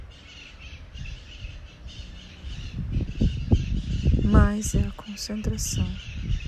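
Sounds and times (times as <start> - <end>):
maritaca parakeets squawking outside: 0.0 - 6.4
speech: 4.4 - 6.0.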